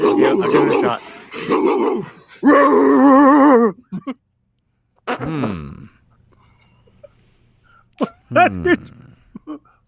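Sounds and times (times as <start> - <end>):
person imitating a dog barking: 0.0 - 3.8, 8.0 - 9.2
speech: 0.1 - 4.2, 5.2 - 5.8, 8.0 - 9.6.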